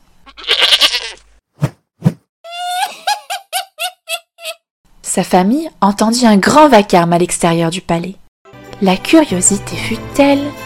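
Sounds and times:
goat bleating: 0.3s - 1.2s
speech: 5.2s - 8.2s, 8.8s - 10.6s.

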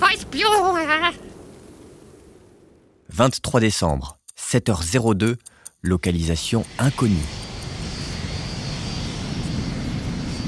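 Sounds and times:
speech: 0.4s - 1.3s, 3.2s - 7.4s
supersonic airplane roaring past at speed: 6.6s - 10.4s.

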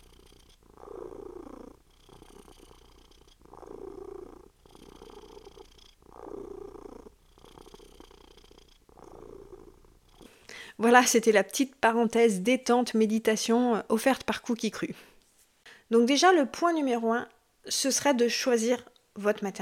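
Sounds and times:
cat purring loudly: 0.0s - 10.4s
speech: 10.8s - 15.1s, 15.9s - 19.5s.

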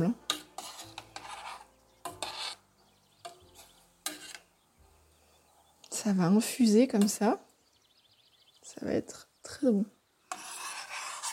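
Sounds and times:
tablespoon stirring syrup with pears in a pot: 0.0s - 4.6s, 10.3s - 11.3s
speech: 6.0s - 7.5s, 8.8s - 10.0s.

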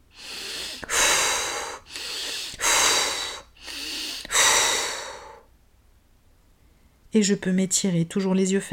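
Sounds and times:
deep energizing breaths: 0.0s - 5.5s
speech: 7.1s - 8.7s.

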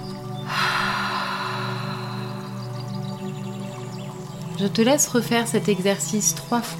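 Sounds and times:
soft steady musical drone: 0.0s - 6.7s
deep nasal inhale then exhale through mouth: 0.4s - 3.8s
speech: 4.6s - 6.7s.

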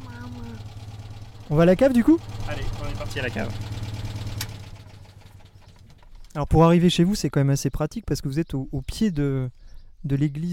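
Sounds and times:
car engine humming while driving to a wine cellar in the Saint-Pourçain vineyard area: 0.0s - 6.4s
speech: 1.5s - 3.8s, 6.4s - 10.5s.

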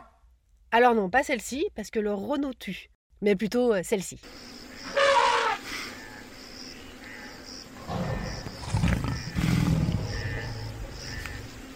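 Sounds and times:
speech: 0.7s - 4.6s
birds chirping: 4.5s - 11.7s
lion roaring: 7.8s - 11.6s.

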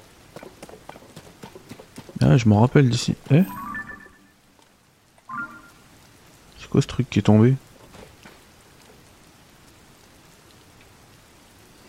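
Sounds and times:
steady rain pouring in a video game: 0.0s - 11.8s
speech: 2.2s - 3.6s, 6.8s - 7.6s.

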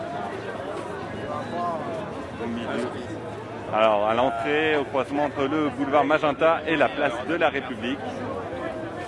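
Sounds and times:
dense protest crowd murmuring: 0.0s - 9.0s
speech: 2.4s - 8.4s.

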